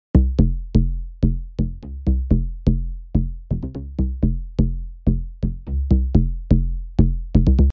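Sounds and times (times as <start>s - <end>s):
deep house bass: 0.2s - 7.7s.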